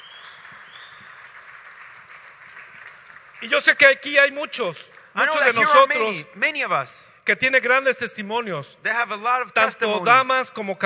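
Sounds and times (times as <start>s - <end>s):
audience applauding: 0.0s - 6.2s
speech: 3.4s - 10.8s.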